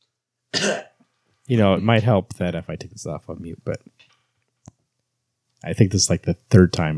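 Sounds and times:
harsh throaty cough: 0.5 - 1.0
speech: 0.6 - 0.9, 1.5 - 4.1, 5.6 - 6.9.

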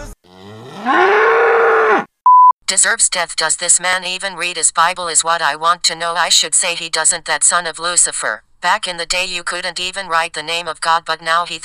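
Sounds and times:
cow mooing: 0.2 - 2.1
electronic beep: 2.3 - 2.5
speech: 2.7 - 11.6.

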